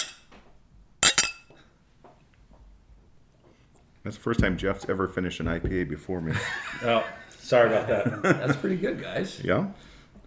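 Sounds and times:
glasses clinking in a toast with IPA beer: 0.0s - 0.3s, 1.0s - 1.6s
speech: 4.1s - 9.9s
laughter: 6.2s - 9.2s.

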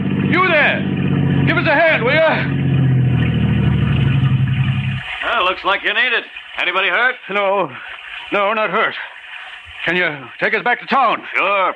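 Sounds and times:
car engine humming as a car comes around a curve: 0.0s - 5.9s
speech: 1.5s - 2.8s, 5.4s - 9.1s, 9.8s - 11.7s.

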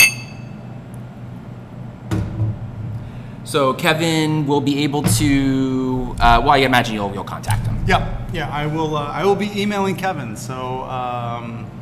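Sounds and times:
glasses clinking together in a toast: 0.0s - 0.6s
speech: 3.5s - 11.7s
dull knock: 5.1s - 8.8s.

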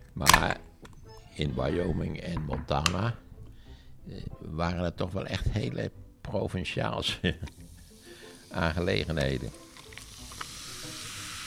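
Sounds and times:
speech: 0.2s - 0.7s, 1.4s - 3.2s, 4.0s - 7.6s, 8.5s - 9.6s
laughter: 7.1s - 7.5s
Diet Coke fizzing poured over lots of ice: 7.5s - 11.4s
sharp clicks of ice: 9.1s - 10.6s.

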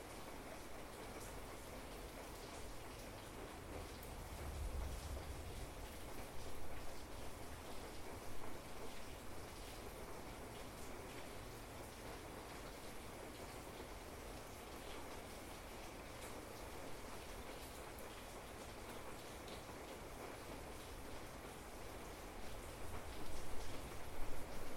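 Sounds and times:
rain on a sunroom roof at night: 0.0s - 24.7s
storm rumbling: 4.1s - 7.0s.

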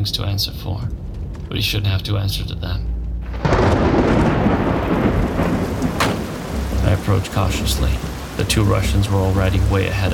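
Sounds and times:
speech: 0.0s - 4.2s, 7.1s - 10.1s
deep rumble: 0.0s - 10.1s
steady dense rain: 3.2s - 10.1s.

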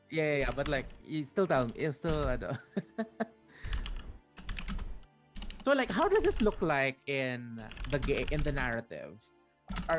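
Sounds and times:
speech: 0.1s - 3.8s, 5.6s - 9.9s
typing on a computer keyboard: 1.6s - 2.4s, 3.7s - 6.6s, 7.7s - 8.8s.

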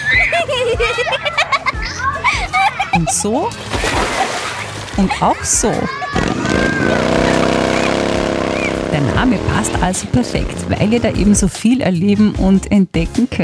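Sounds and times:
children shouting, chattering and laughing in lively play: 0.0s - 3.2s, 4.0s - 8.9s
speech: 3.0s - 4.2s, 5.0s - 7.0s, 9.0s - 13.4s
water splashing and sloshing: 3.5s - 9.3s
loud hot engine revving and roaring: 4.8s - 11.7s.

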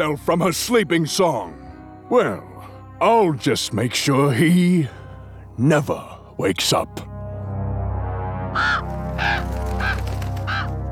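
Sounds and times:
speech: 0.0s - 5.0s, 5.6s - 7.1s
crow cawing: 8.6s - 10.8s.

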